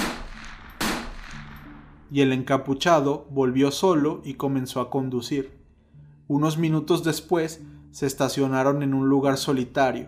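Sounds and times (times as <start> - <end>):
sharp gunshots with brief echo: 0.0 - 2.0
speech: 2.1 - 5.6, 6.3 - 10.0.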